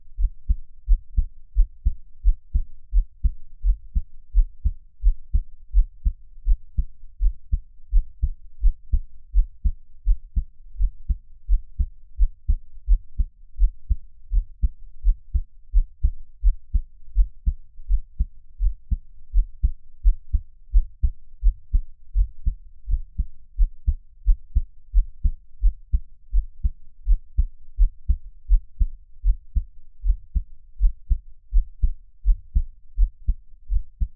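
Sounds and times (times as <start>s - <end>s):
heartbeat thumping: 0.2s - 34.1s.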